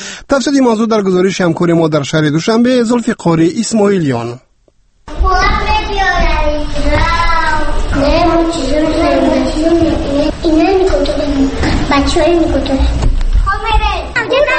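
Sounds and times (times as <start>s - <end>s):
speech: 0.3s - 4.4s, 8.0s - 13.0s
young children chattering and calling out in kindergarten: 5.1s - 14.5s.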